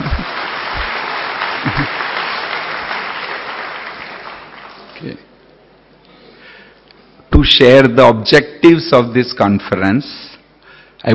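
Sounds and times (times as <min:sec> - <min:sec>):
audience applause at a conference: 0:00.0 - 0:05.2
speech: 0:05.0 - 0:05.3, 0:07.4 - 0:10.3.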